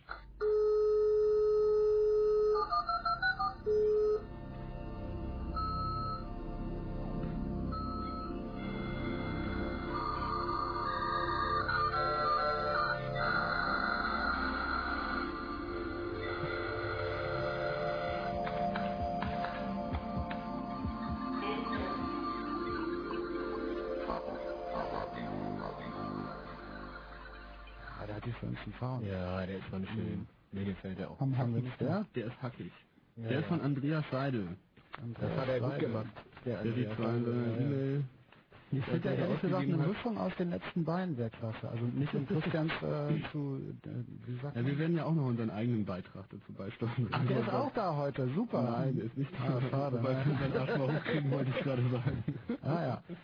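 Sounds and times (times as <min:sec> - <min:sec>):
beeping telephone-like tones in an electronic jingle: 0:00.4 - 0:04.3, 0:05.5 - 0:06.3, 0:07.7 - 0:28.0
shifting synth sounds in an electronic jingle: 0:04.2 - 0:28.1
speech: 0:28.4 - 0:53.2
laughter: 0:38.9 - 0:40.0, 0:49.3 - 0:52.9.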